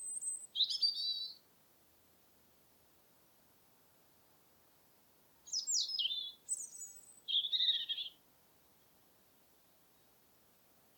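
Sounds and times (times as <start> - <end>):
European robin Erithacus rubecula singing: 0.0 - 1.4, 5.5 - 8.2.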